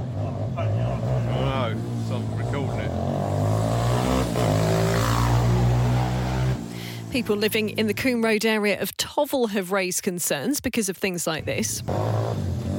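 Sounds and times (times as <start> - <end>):
motorbikes roaring with rising and falling revs: 0.0 - 8.6, 11.3 - 12.7
speech: 7.1 - 12.3.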